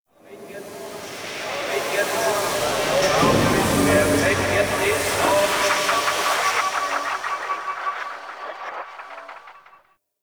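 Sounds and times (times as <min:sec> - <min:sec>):
ghost cargo echoing ambience: 0:00.1 - 0:09.6.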